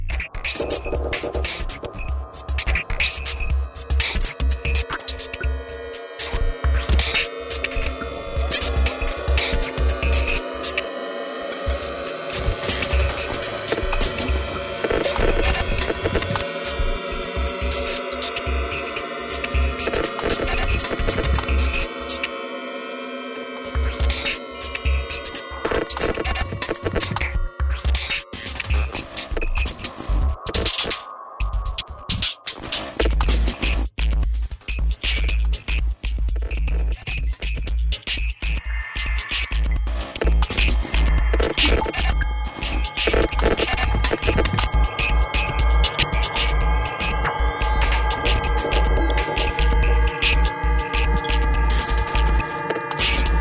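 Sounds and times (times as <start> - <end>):
noise: 0.1 - 53.4.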